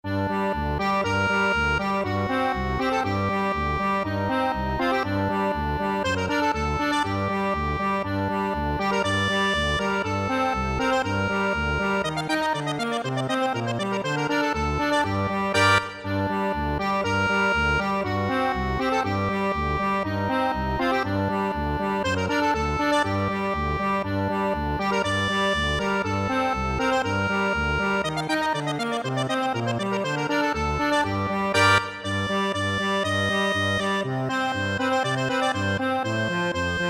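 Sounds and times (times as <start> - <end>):
accordion playing a Hungarian dance: 0.1 - 36.8.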